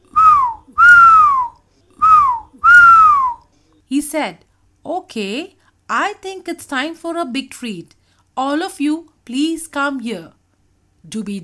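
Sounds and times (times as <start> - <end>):
cheerful whistling: 0.1 - 3.4
speech: 3.9 - 10.4, 11.0 - 11.4.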